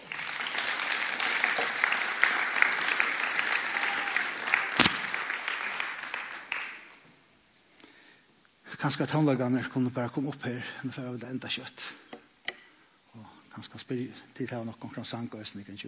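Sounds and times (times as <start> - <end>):
crowd of people applauding: 0.0 - 7.0
speech: 8.8 - 12.0, 13.6 - 15.8.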